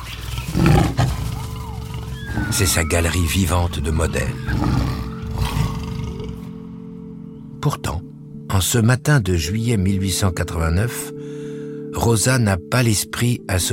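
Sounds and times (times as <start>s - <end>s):
lion roaring: 0.0s - 6.6s
faint ambient chirps: 1.4s - 11.9s
speech: 2.5s - 5.0s, 8.6s - 11.2s, 12.0s - 13.7s.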